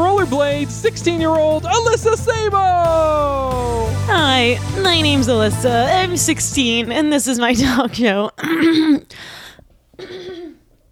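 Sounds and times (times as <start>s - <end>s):
speech: 0.3s - 9.2s
person coughing: 7.6s - 10.8s
person clearing throat: 8.4s - 9.2s, 10.0s - 10.8s.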